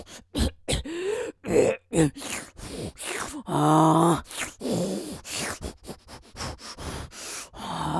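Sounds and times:
groaning breaths: 0.0s - 7.9s
person choking and coughing from a strong smell: 0.4s - 2.5s
speech: 1.5s - 2.5s.

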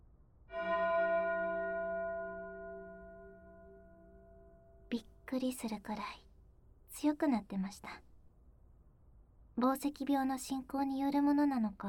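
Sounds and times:
single bell ringing in the distance: 0.5s - 4.9s
speech: 4.9s - 6.3s, 6.9s - 8.0s, 9.6s - 11.8s.

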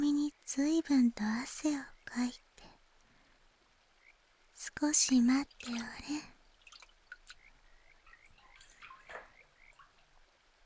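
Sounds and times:
speech: 0.5s - 2.5s, 4.6s - 6.4s
river water dripping: 4.6s - 10.6s
river water being scooped and poured: 5.5s - 7.2s.

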